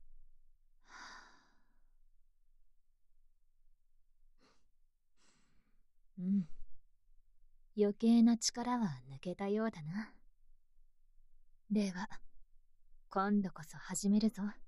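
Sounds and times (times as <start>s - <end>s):
person breathing in and out on instruction: 0.8s - 1.8s, 4.4s - 6.7s
speech: 7.8s - 10.2s, 11.7s - 12.3s, 13.1s - 14.6s.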